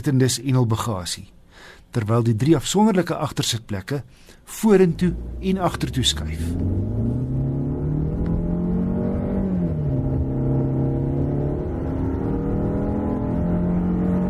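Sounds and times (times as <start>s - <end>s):
speech: 0.0s - 7.2s
turbo petrol car engine accelerating to 100 km/h: 4.7s - 14.2s.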